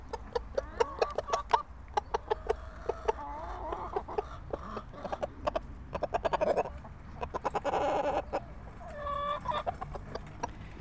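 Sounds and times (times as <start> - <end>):
rooster clucking: 0.0 - 10.7.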